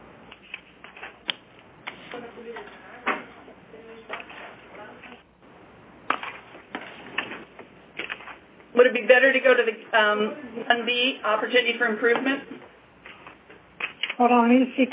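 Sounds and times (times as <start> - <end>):
paper pages being flipped through: 0.3 - 2.2, 6.1 - 8.4, 13.0 - 14.2
speech: 2.4 - 3.0, 8.8 - 12.6, 14.2 - 14.9.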